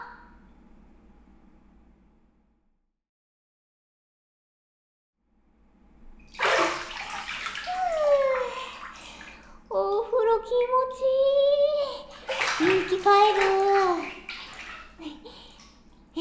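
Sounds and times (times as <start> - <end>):
shower water rinsing someone in a bathroom: 6.0 - 16.1.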